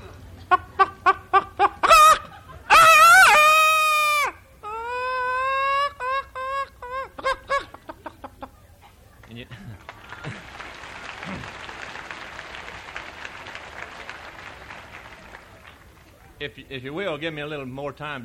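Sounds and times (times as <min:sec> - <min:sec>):
laughter: 0:00.0 - 0:12.8
man imitating chicken clucking and squawking: 0:00.5 - 0:07.7
audience applause: 0:09.2 - 0:16.3
speech: 0:16.7 - 0:18.2.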